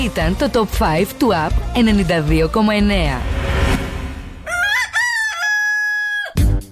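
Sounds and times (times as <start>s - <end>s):
speech: 0.2s - 3.3s
rooster crowing: 4.4s - 6.4s.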